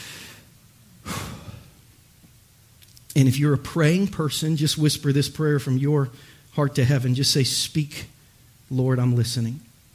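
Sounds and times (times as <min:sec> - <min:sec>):
group drawing a deep collective breath during prayer at a religious service: 0:00.0 - 0:01.8, 0:06.2 - 0:06.5
speech: 0:03.2 - 0:08.1, 0:08.7 - 0:09.7.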